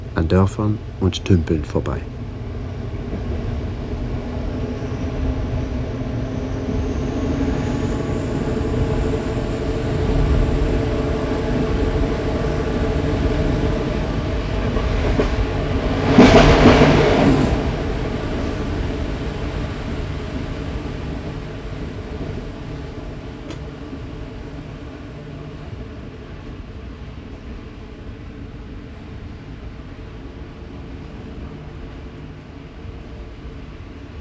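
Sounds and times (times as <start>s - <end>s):
train rushing through forests: 0.0s - 34.1s
speech: 0.2s - 2.2s
rail clatter: 13.3s - 18.8s.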